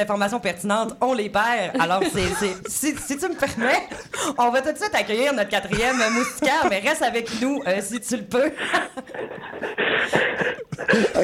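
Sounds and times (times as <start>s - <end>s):
speech: 0.0s - 11.2s
laughter: 1.7s - 4.4s, 5.0s - 11.2s
heavy rapid panting breaths over a tinny phone line: 9.4s - 11.2s.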